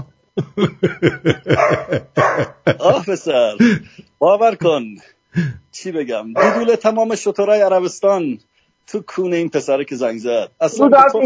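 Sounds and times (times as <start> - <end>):
laughter: 0.0 - 4.7, 6.4 - 6.8
speech: 0.0 - 11.2
dog barking: 1.5 - 2.7, 6.4 - 6.8.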